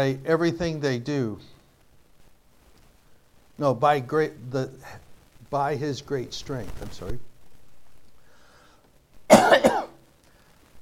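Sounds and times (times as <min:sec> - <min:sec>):
speech: 0:00.0 - 0:01.5, 0:03.6 - 0:07.3
harsh throat clearing: 0:09.3 - 0:10.0
person coughing: 0:09.3 - 0:10.0.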